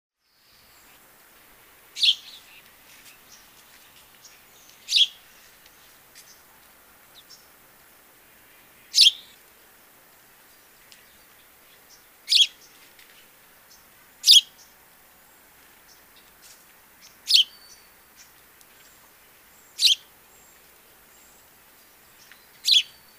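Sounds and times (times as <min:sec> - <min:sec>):
faint background hiss: 0:00.2 - 0:23.1
house sparrow Passer domesticus giving sharp high chirps: 0:02.0 - 0:06.4, 0:08.8 - 0:09.4, 0:10.6 - 0:12.8, 0:13.7 - 0:14.8, 0:17.0 - 0:23.1.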